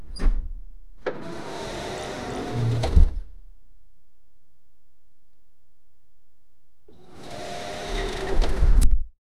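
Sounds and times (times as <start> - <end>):
automatic sliding glass door: 1.0 - 3.8, 6.9 - 8.8.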